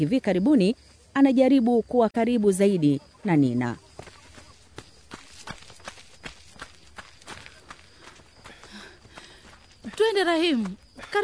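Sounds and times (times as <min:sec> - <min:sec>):
speech: 0:00.0 - 0:03.8, 0:10.0 - 0:11.2
running footsteps of two people at running practice: 0:03.8 - 0:11.2.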